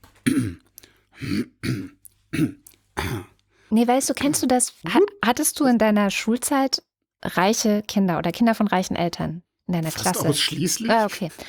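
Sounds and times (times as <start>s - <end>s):
speech: 0.2s - 0.6s, 1.2s - 1.5s, 3.8s - 11.4s
person deliberately clearing their throat: 0.2s - 3.3s, 10.0s - 10.6s.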